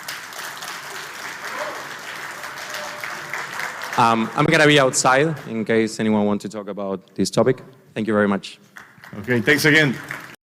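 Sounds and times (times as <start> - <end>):
conference audience applause after a talk's question session: 0.0 - 5.5, 8.8 - 10.4
speech: 4.0 - 10.2.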